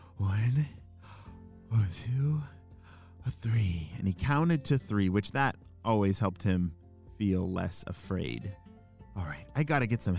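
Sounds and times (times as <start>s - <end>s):
speech: 0.2s - 0.8s, 1.7s - 2.6s, 3.2s - 8.6s, 9.2s - 10.1s
person breathing slowly with long voiced sighs to calm down: 1.0s - 1.5s, 2.7s - 3.2s.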